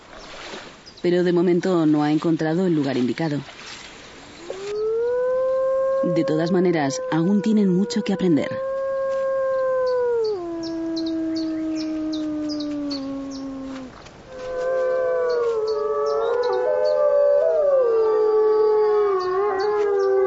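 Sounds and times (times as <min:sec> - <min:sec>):
speech: 0:01.0 - 0:03.6, 0:06.1 - 0:08.7
lone wolf howling: 0:04.5 - 0:20.2.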